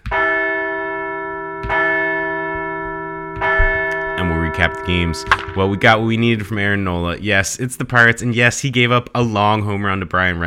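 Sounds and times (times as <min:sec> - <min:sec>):
large deep bell tolling: 0:00.1 - 0:06.8
speech: 0:04.6 - 0:10.4.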